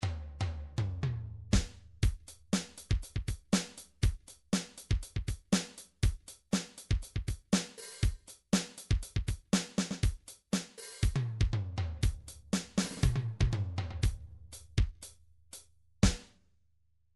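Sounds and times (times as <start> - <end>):
MIDI funk drums: 0.0 - 15.2, 16.0 - 16.3.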